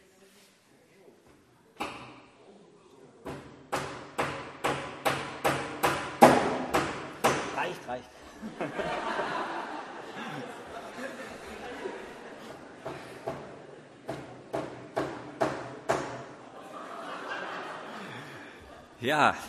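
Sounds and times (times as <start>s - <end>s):
hammer striking a wooden door, hammering a paper onto it: 3.3s - 7.6s, 14.1s - 16.3s
speech: 7.9s - 9.2s, 19.0s - 19.4s
crowd laughing: 8.2s - 14.1s, 16.3s - 19.4s.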